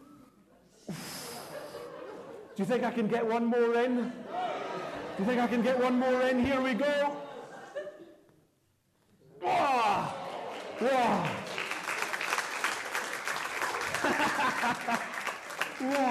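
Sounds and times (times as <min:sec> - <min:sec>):
laughter: 0:00.8 - 0:03.1, 0:04.2 - 0:08.4, 0:13.4 - 0:16.0
speech: 0:02.6 - 0:04.3, 0:05.2 - 0:07.2
audience whoops and cheers: 0:09.4 - 0:11.0
audience applause: 0:09.7 - 0:16.0.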